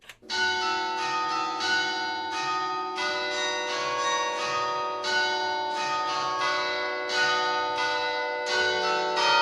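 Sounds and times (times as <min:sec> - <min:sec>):
town hall carillon bells playing a melody: 0:00.2 - 0:09.4.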